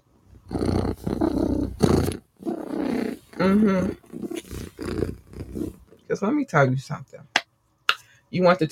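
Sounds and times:
human voice imitating a cat's purr: 0.4 - 5.8
speech: 3.4 - 4.0, 6.1 - 7.1, 8.3 - 8.7.

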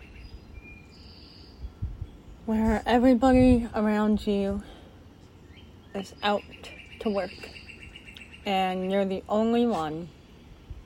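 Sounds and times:
birds chirping: 0.0 - 10.8
soft rumble: 1.6 - 5.5
speech: 2.5 - 4.7, 6.0 - 7.6, 8.4 - 10.2.

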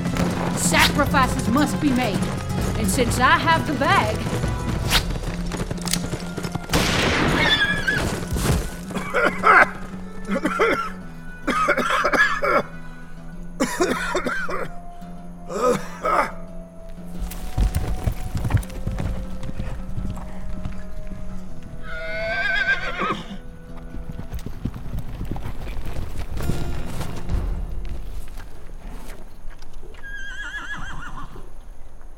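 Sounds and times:
hooves clip-clopping on a hard surface: 0.0 - 12.2, 16.8 - 32.1
speech: 0.6 - 4.5, 9.2 - 9.6
horse letting out a loud wavering whinny: 7.3 - 10.5, 21.8 - 23.5, 29.9 - 31.6
harsh raspy coughs with strained throaty sounds: 10.3 - 12.7, 13.6 - 14.7, 15.5 - 16.4.

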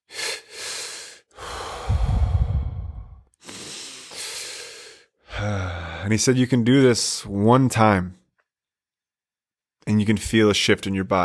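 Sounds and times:
double inhale and long forceful exhale in a breathing exercise: 0.0 - 6.2
speech: 6.0 - 8.2, 10.0 - 11.2.

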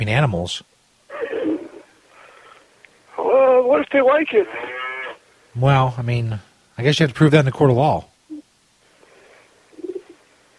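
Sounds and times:
speech: 0.0 - 0.8, 3.7 - 4.7, 5.6 - 8.1
owl hooting: 1.1 - 1.9, 9.7 - 10.2.

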